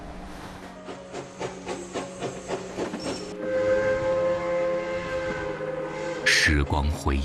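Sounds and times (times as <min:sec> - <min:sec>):
high-speed train whine and hum: 0:00.0 - 0:07.2
high-speed train wheels clattering over rail joints: 0:00.7 - 0:03.5
speech: 0:06.5 - 0:07.2.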